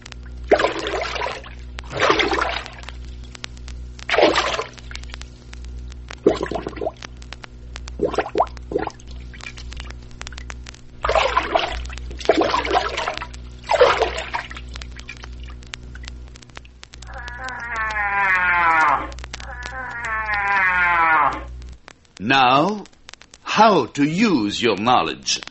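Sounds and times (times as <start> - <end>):
water splashing imitating a cow moose wading: 0.5 - 3.3, 4.1 - 5.1, 6.2 - 7.0, 7.9 - 10.4, 11.0 - 21.5
long moaning tonal calls: 17.0 - 21.5
speech: 23.7 - 25.4.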